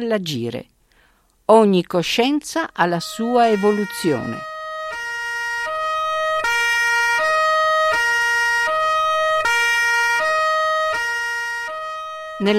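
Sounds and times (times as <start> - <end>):
speech: 0.0 - 0.7, 1.5 - 4.5
police car siren wailing: 2.8 - 12.5.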